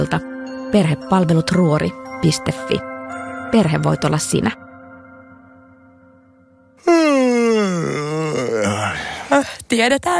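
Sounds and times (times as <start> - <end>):
speech: 0.0 - 2.9, 3.5 - 4.6, 9.7 - 10.1
person yawning: 6.8 - 9.6.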